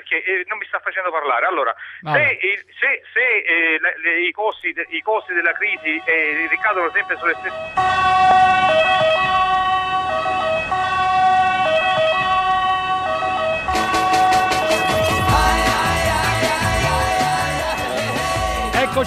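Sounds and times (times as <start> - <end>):
speech: 0.1 - 9.4
ambulance siren wailing in a two-tone pattern: 5.8 - 19.0
road vehicle noise: 7.6 - 19.0.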